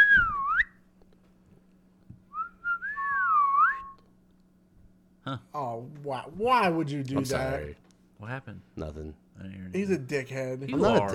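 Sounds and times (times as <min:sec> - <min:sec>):
person whistling a melody: 0:00.0 - 0:00.8, 0:02.3 - 0:04.0
faint steady hum: 0:00.0 - 0:11.1
speech: 0:05.3 - 0:11.1.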